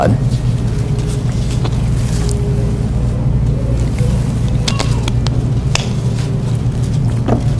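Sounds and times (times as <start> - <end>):
low-flying airplanes passing overhead: 0.0 - 7.5.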